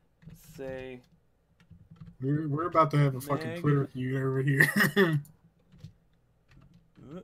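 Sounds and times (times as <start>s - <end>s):
typing on a computer keyboard: 0.2s - 2.2s, 5.2s - 7.2s
speech: 0.6s - 1.2s, 2.2s - 5.3s.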